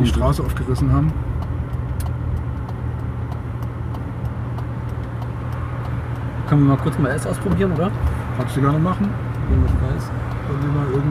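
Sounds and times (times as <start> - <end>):
speech: 0.0 - 1.3, 6.5 - 11.1
continuous road noise of a car on a street: 0.0 - 11.1
faint regular light ticking: 0.0 - 11.1
rear-wheel-drive car engine rumble on a street: 0.0 - 11.1.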